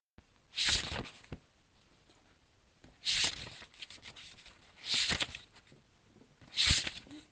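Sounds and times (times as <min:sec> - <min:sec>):
book pages flipping: 0:00.5 - 0:01.4, 0:02.9 - 0:05.8, 0:06.4 - 0:07.2.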